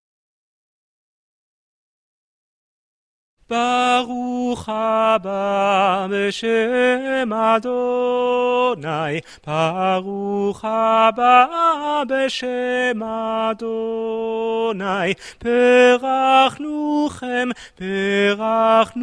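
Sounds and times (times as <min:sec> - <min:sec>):
soprano singing in choir music: 0:03.5 - 0:19.0.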